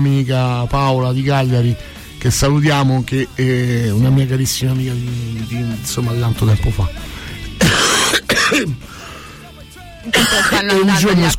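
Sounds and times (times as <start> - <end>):
speech: 0.0 - 7.1, 8.5 - 9.0, 10.0 - 11.3
gravelly phlegmy clearing of the throat: 7.6 - 8.8, 10.1 - 10.6
harsh raspy smoker's coughs from cigarette smoking: 7.6 - 8.9, 10.0 - 10.9.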